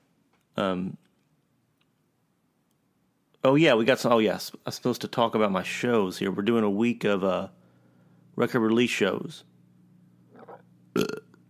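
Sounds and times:
steady low hum: 0.0s - 11.4s
speech: 0.6s - 1.0s, 3.4s - 7.6s, 8.4s - 9.5s, 11.0s - 11.2s
burp: 10.3s - 11.4s.

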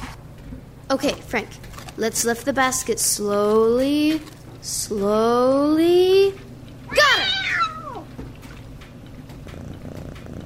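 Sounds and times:
speech: 0.9s - 6.4s
cat purring: 6.4s - 10.4s
cat meowing: 6.9s - 8.1s.

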